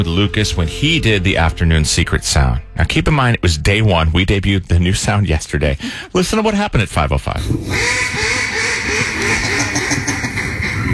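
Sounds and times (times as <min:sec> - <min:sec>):
speech: 0:00.0 - 0:10.1
hand-blown duck call quacking: 0:07.7 - 0:10.9.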